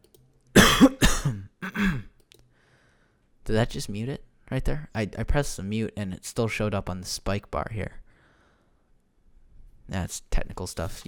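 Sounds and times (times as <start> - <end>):
harsh raspy coughs: 0.6 - 2.1
speech: 3.5 - 8.0, 9.9 - 11.0.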